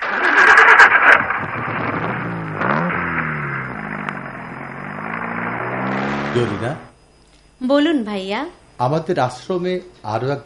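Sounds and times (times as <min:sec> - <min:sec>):
car engine starting: 0:00.0 - 0:06.9
speech: 0:06.4 - 0:06.9, 0:07.6 - 0:10.4.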